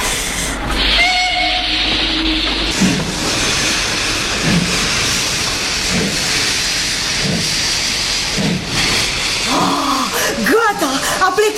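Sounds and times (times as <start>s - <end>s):
steam train hissing steam bursts: 0.0s - 11.5s.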